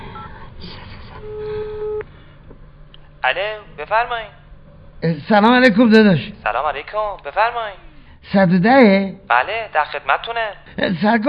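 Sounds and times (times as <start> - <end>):
electronic telephone tone while dialling on a keypad: 1.2 - 2.0
speech: 3.3 - 4.4, 5.0 - 11.2.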